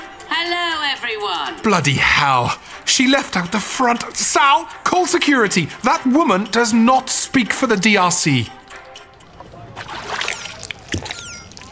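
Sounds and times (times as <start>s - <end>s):
speech: 0.4s - 8.6s
water sloshing and trickling: 9.2s - 11.6s
faint high chirps: 10.3s - 11.6s.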